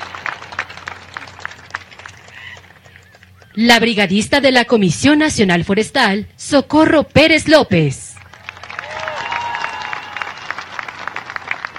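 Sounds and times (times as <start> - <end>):
large crowd applauding: 0.0 - 3.6, 8.2 - 11.7
speech: 3.6 - 8.0.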